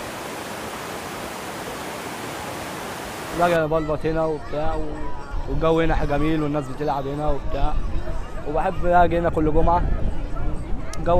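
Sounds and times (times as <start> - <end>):
water pouring over waterfalls at a river barrage: 0.0 - 3.6
speech: 3.4 - 10.1, 11.0 - 11.1.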